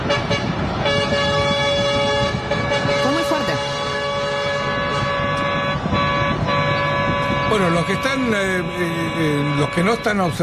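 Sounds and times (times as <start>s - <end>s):
horns of protest convoy trucks, pickups and tractors blaring: 0.0s - 10.4s
steady engine rumble of trucks and tractors: 0.0s - 10.4s
speech: 7.6s - 10.4s.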